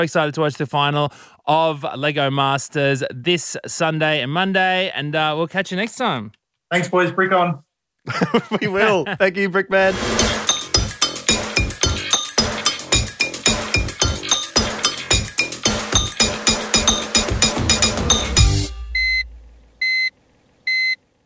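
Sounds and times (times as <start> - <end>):
speech: 0.0 - 10.4
laughter: 8.1 - 9.3
loud rhythmic music: 9.9 - 19.4
refrigerator door-open alarm beeping: 16.8 - 21.0.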